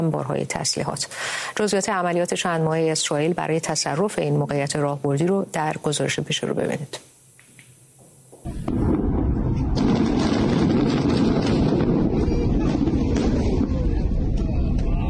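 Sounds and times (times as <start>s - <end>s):
speech: 0.0s - 7.1s
huge explosion: 8.5s - 15.0s
loud sustained roaring rumble: 8.5s - 15.0s.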